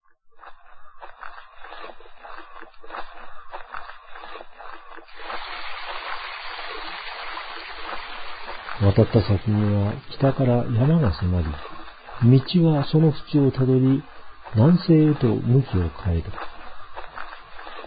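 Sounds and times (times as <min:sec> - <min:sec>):
river water flowing: 0:05.1 - 0:17.8
speech: 0:08.8 - 0:16.5.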